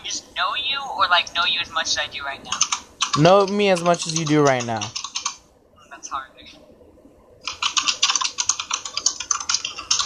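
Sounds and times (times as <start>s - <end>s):
speech: 0.4s - 5.0s
computer keyboard keys clacking: 2.5s - 5.4s, 7.4s - 10.0s.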